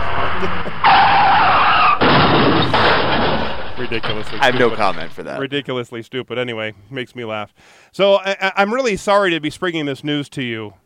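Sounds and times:
laughter: 0.0 - 0.8
loud tire screech with high whining squeal: 0.0 - 5.2
car crash sound effect: 0.0 - 5.4
speech: 3.9 - 10.8.

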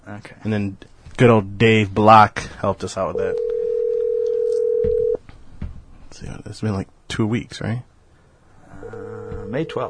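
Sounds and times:
speech: 0.0 - 3.4, 6.1 - 7.9, 8.7 - 9.8
telephone dial tone while dialing a call: 3.3 - 5.2.

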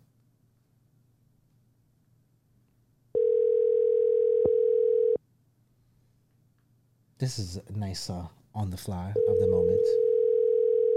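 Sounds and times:
outgoing phone call ringing tone: 3.2 - 5.2, 9.2 - 10.9
speech: 7.2 - 10.1.

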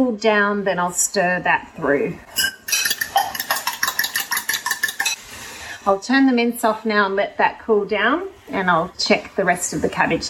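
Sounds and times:
speech: 0.0 - 2.8, 5.8 - 10.2
whisk beating two eggs in a bowl for a cabbage-roll mince filling: 2.4 - 5.2.

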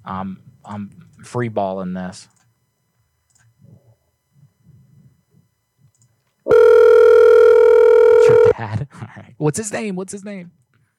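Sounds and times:
speech: 0.0 - 2.4, 8.6 - 10.6
telephone ringback tone on an outgoing call: 6.5 - 8.6.

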